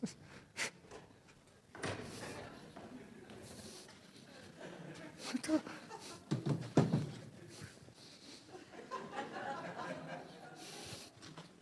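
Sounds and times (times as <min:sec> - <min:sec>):
laughter: 0:04.1 - 0:06.4, 0:07.4 - 0:11.0
speech: 0:05.5 - 0:05.8
chair knocking: 0:06.3 - 0:07.2.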